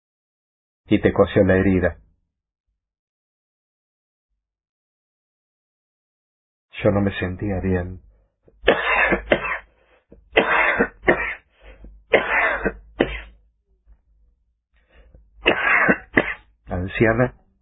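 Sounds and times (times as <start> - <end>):
speech: 0.9 - 2.0, 6.8 - 9.2, 16.8 - 17.4
unwell person with a freshly stitched wound coughing painfully: 8.7 - 9.7, 10.3 - 11.4, 12.1 - 13.4, 15.4 - 16.4.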